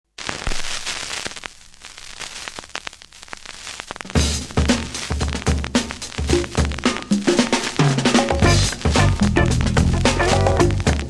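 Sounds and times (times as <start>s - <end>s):
breakbeat drums: 4.0s - 11.0s.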